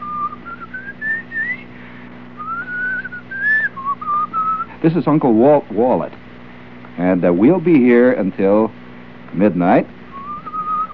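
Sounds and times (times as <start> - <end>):
man whistling a wavering melody: 0.0 - 1.7, 2.4 - 4.7, 10.1 - 10.9
low steady hum: 0.0 - 10.9
speech: 4.8 - 6.2, 7.0 - 10.0.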